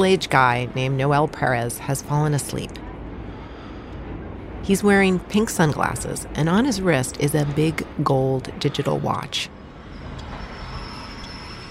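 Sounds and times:
speech: 0.0 - 2.8, 4.6 - 9.6
subway train running along the tracks: 0.0 - 11.6
thin high whine: 0.7 - 11.6.

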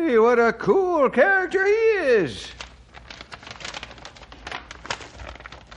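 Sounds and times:
speech: 0.2 - 2.6
sealed paper packet wrapped in tape tearing open: 2.5 - 5.7.

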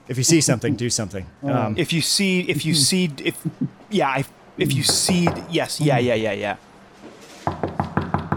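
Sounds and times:
speech: 0.1 - 6.7
firm knocks on a wooden door: 4.8 - 5.5, 7.5 - 8.3.

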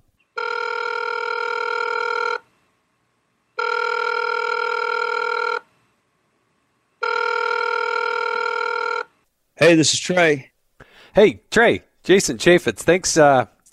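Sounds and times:
outgoing phone call ringing tone: 0.4 - 2.5, 3.6 - 5.7, 7.0 - 9.2
speech: 9.7 - 10.5, 11.2 - 13.5.

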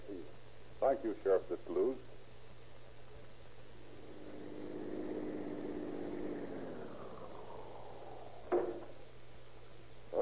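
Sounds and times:
speech: 0.9 - 2.1
police car engine humming and winding down: 3.3 - 10.1.

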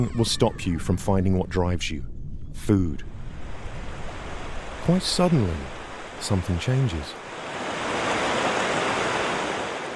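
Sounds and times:
speech: 0.0 - 3.1, 4.8 - 7.2
ocean surf breaking at the mouth of the Columbia River: 3.1 - 9.9.

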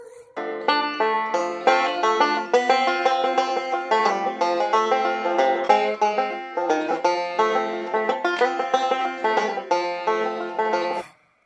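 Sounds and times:
banjo picked rapidly: 0.4 - 11.1.

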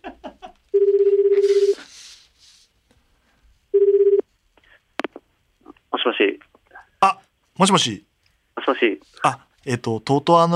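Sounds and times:
ringback tone of outgoing telephone call: 0.8 - 1.8, 3.7 - 4.2
speech: 7.0 - 8.1, 8.7 - 10.5.

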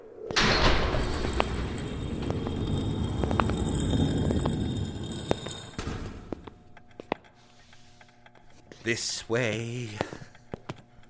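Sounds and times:
heavy door sliding open: 0.4 - 6.5
speech: 8.9 - 10.2.

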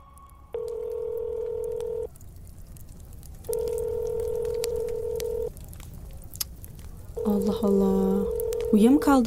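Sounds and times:
faint noise: 0.0 - 9.2
ringback tone of an unanswered telephone call: 0.6 - 2.1, 3.5 - 5.5, 8.2 - 8.9
speech: 7.3 - 9.2.

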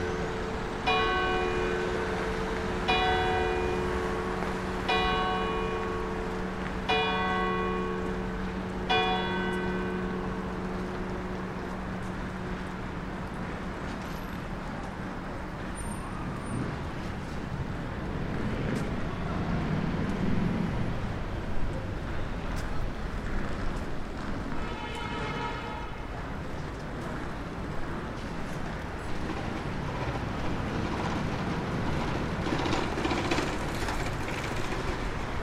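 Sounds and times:
church bells of Saint Nicolas des Champs chiming in Le Marais Paris: 0.0 - 13.0
dense roar of traffic on two major roads in Paris: 0.0 - 35.4.

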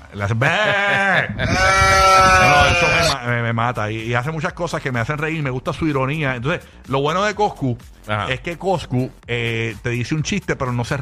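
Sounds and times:
speech: 0.1 - 11.0
laughter: 0.3 - 3.2
goat bleating: 0.4 - 3.2.

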